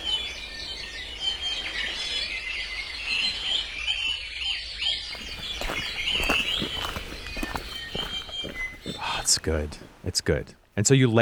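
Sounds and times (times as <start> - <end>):
busy chorus of birds chirping and singing: 0.0 - 10.0
crunchy footsteps on leaves or grass: 5.1 - 9.2
speech: 9.4 - 11.2.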